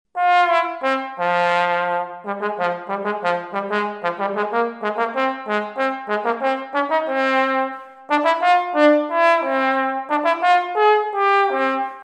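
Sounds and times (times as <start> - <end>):
tenor trombone playing bolero style: 0.2 - 12.0.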